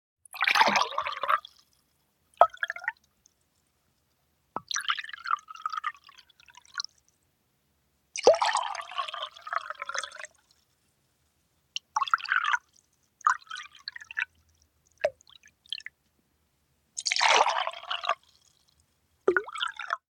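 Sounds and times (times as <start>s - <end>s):
pouring water: 0.3s - 1.8s, 2.4s - 3.0s, 4.6s - 7.0s, 8.2s - 10.6s, 11.8s - 14.4s, 17.0s - 20.0s.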